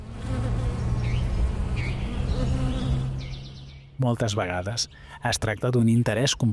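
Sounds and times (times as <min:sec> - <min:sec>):
wild and domestic bees and flies buzzing around flowers in a field: 0:00.0 - 0:04.0
speech: 0:04.0 - 0:06.5.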